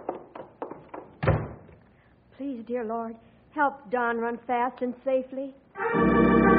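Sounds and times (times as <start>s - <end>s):
wooden door being worked open with thunks and a heavy thud: 1.0s - 1.8s
speech: 2.6s - 6.4s.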